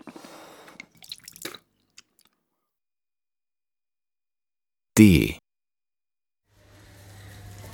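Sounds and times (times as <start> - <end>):
irregular water drips and light splashes: 0.8 - 2.3
speech: 5.0 - 5.4.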